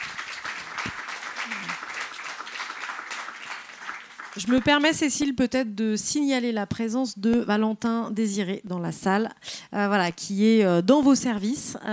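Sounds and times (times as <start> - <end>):
crowd applauding two speakers: 0.0 - 5.0
speech: 4.4 - 11.9.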